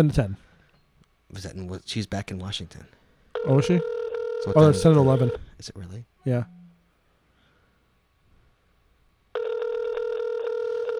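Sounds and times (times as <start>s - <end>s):
speech: 0.0s - 0.4s, 1.3s - 6.6s
outgoing phone call ringback tone: 3.4s - 5.4s, 9.4s - 10.9s.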